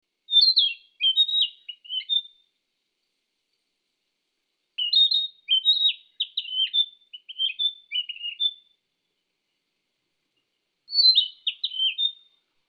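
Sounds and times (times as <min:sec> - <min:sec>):
bird chirping and twittering: 0:00.3 - 0:02.4, 0:04.8 - 0:08.7, 0:10.9 - 0:12.4.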